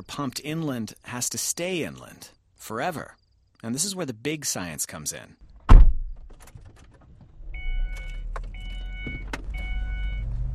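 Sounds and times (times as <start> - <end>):
speech: 0.0 - 5.5
car engine rumble inside the vehicle driving into the desert: 5.6 - 10.5.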